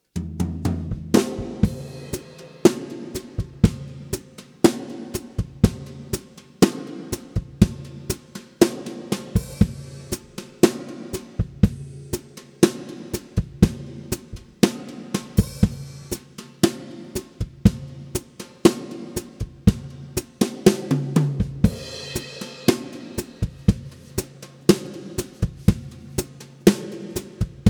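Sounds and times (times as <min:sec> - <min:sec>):
drum kit: 0:00.1 - 0:27.6.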